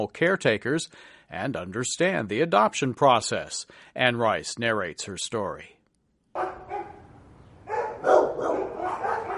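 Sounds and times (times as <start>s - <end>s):
speech: 0.0s - 5.8s
dogs barking in an animal shelter in western Los Angeles: 6.4s - 9.3s.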